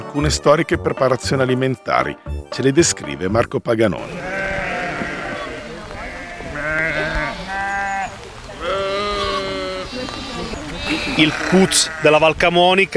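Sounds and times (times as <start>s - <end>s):
speech: 0.1s - 4.4s, 11.0s - 12.9s
sheep bleating: 4.0s - 12.3s.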